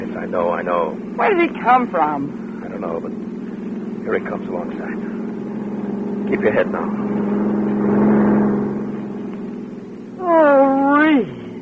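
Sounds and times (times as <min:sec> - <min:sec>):
speech: 0:00.3 - 0:03.3, 0:04.0 - 0:05.1, 0:06.3 - 0:07.6, 0:10.3 - 0:11.4
car driving past: 0:01.8 - 0:10.2.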